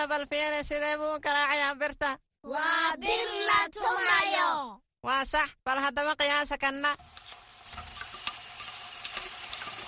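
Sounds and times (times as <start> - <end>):
speech: 0.1 - 7.2
something sweet frying in a restaurant kitchen: 7.0 - 9.8.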